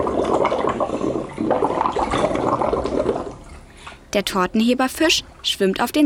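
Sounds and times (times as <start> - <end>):
blowing bubbles through a straw into a bowl of water: 0.0 - 3.8
speech: 4.2 - 6.0.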